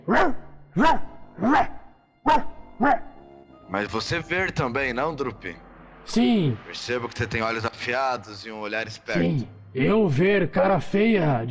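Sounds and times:
person imitating dog with yapping barks: 0.0s - 3.1s
speech: 0.1s - 1.6s, 3.8s - 11.5s.

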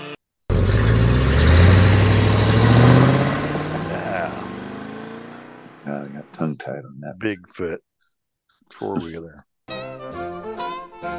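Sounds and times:
monster truck engine revving: 0.5s - 6.6s
laughter: 3.7s - 4.4s, 5.9s - 7.8s, 8.8s - 9.4s
speech: 6.7s - 7.9s, 8.7s - 9.5s.

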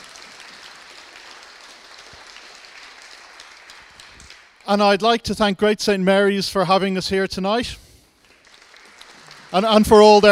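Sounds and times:
audience applause at a candidates' debate in the UK: 0.0s - 4.7s, 8.2s - 10.2s
speech: 4.7s - 7.8s, 9.5s - 10.2s.

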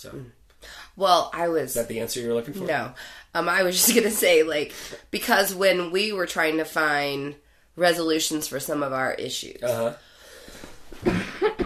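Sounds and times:
speech: 0.0s - 0.4s, 1.0s - 11.3s
person coughing: 11.0s - 11.6s.

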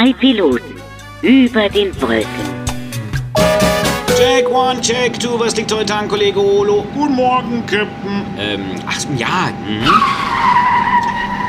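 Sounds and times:
speech: 0.0s - 2.6s, 4.2s - 10.7s
skidding tire squeal of a rubber car: 9.8s - 11.4s.

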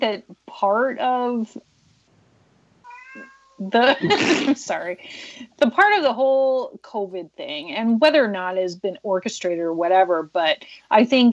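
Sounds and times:
speech: 0.0s - 1.7s, 3.2s - 11.3s
cat meowing for food: 2.8s - 3.7s
laughter: 3.8s - 4.6s.

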